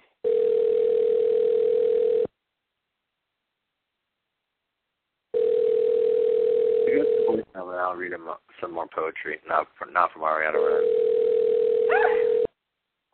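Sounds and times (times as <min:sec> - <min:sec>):
ringback tone of an outgoing telephone call: 0:00.2 - 0:02.3, 0:05.3 - 0:07.4, 0:10.7 - 0:12.5
speech: 0:07.8 - 0:11.0.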